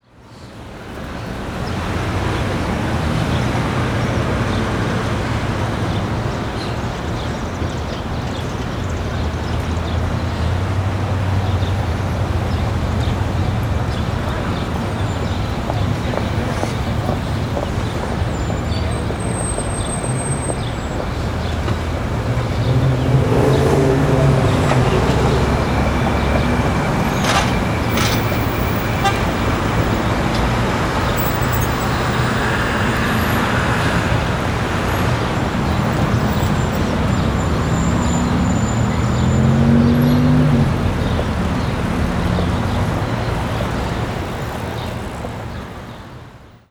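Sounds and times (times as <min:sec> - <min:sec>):
city street ambience: 0:00.0 - 0:46.6.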